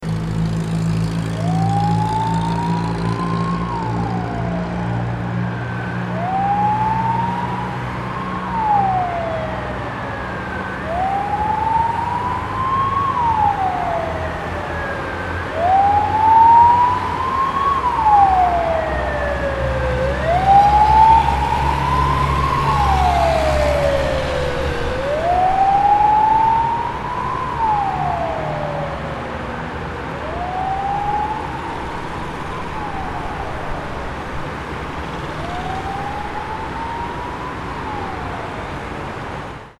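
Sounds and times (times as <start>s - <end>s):
fire truck siren: 0.0s - 39.7s.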